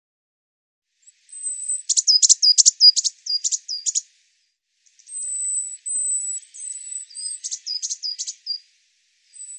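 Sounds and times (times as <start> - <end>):
Eurasian blue tit calling high notes and zigzagging chatter: 1.1 - 4.1, 5.0 - 8.7, 9.3 - 9.5.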